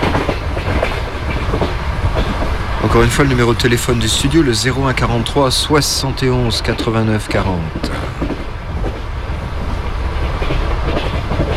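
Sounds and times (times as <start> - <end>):
rhythmic clickety-clack of train wheels: 0.0 - 11.5
train travelling along rails between stations: 0.0 - 11.5
speech: 2.8 - 8.2.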